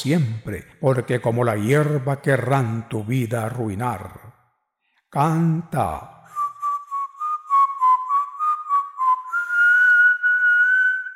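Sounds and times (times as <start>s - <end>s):
speech: 0.0s - 4.2s, 5.1s - 6.2s
person whistling a tune: 6.3s - 11.1s.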